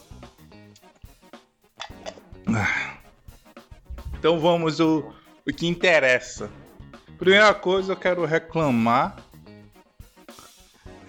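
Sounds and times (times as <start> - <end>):
person sipping and swallowing water from a glass: 1.8 - 2.9
speech: 2.5 - 2.9, 4.2 - 6.6, 7.2 - 9.2.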